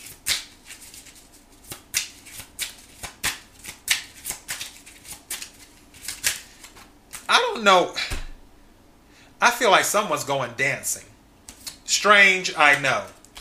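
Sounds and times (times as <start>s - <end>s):
tarot cards being shuffled by hand: 0.0s - 7.3s, 11.5s - 11.8s
speech: 7.6s - 8.1s, 9.4s - 11.1s, 12.0s - 13.2s.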